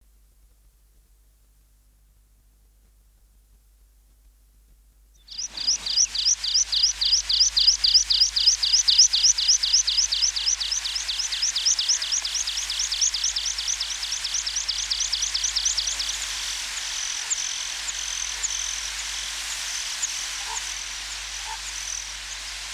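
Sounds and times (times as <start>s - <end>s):
songbirds singing: 5.2s - 22.4s
water pipit calling: 5.3s - 22.6s.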